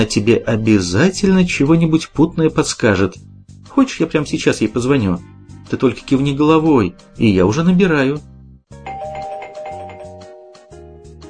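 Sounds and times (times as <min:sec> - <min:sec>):
speech: 0:00.0 - 0:08.8
electronic doorbell chime ringing: 0:08.8 - 0:10.9.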